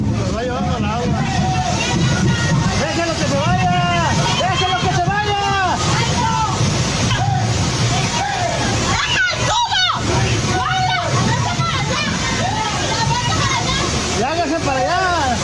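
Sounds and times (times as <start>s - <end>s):
dense crowd of excited voices shouting and calling out: 0.0s - 15.4s
floodwater rushing and sloshing through a street market: 0.0s - 15.4s.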